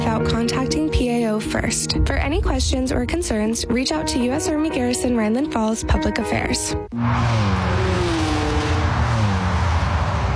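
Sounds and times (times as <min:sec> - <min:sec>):
speech: 0:00.2 - 0:07.9
car engine drone while driving on roads in Germany: 0:06.9 - 0:10.3.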